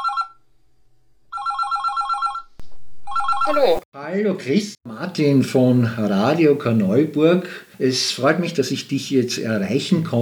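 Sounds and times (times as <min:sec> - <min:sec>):
telephone ringing on an outgoing call: 0:00.0 - 0:00.4, 0:01.3 - 0:02.5, 0:03.1 - 0:03.8
speech: 0:03.5 - 0:10.2.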